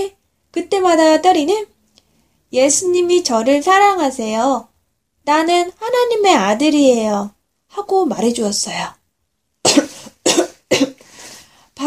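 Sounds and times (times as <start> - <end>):
speech: 0.0 - 1.7, 2.5 - 9.0
ill child coughing harshly: 9.6 - 11.0.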